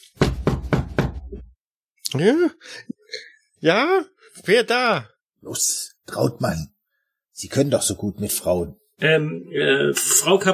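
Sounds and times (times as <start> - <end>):
firm knocking on a closed door: 0.2 - 1.5
speech: 2.1 - 2.9, 3.6 - 6.7, 7.4 - 10.5.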